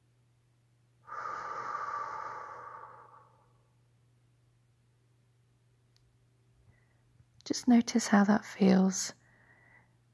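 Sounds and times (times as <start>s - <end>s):
faint steady hum: 0.0s - 10.1s
forceful whooshing exhale in a breathing exercise: 1.1s - 3.6s
speech: 7.5s - 9.2s.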